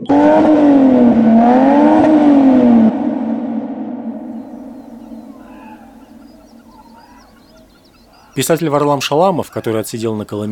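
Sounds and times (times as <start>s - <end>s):
Toyota Chaser car engine revving: 0.0s - 7.3s
speech: 8.4s - 10.4s.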